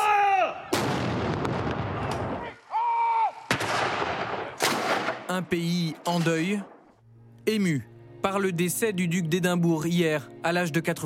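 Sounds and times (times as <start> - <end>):
person shouting commands: 0.0 - 0.6
ceremonial cannon salute shots: 0.7 - 2.4, 3.5 - 5.4
speech: 5.4 - 6.8, 7.4 - 11.0.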